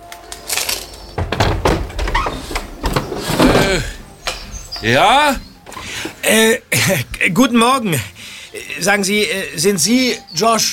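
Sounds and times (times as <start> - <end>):
solid clunks and rattles: 1.1 - 6.2
window knocking as it settles: 1.2 - 5.6
window creaking and scraping as it is pushed open: 1.2 - 6.2
speech: 3.7 - 4.0, 4.8 - 5.5, 6.2 - 8.1, 8.8 - 10.7.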